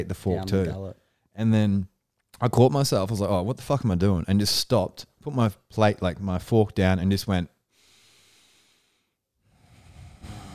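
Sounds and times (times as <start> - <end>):
speech: 0.0 - 7.5
soft airy exhale: 7.8 - 10.5.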